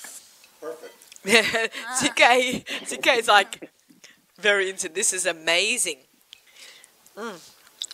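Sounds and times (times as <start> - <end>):
speech: 0.6 - 3.8, 4.4 - 6.1, 7.2 - 7.5
person chewing soft dried meat: 6.3 - 7.9.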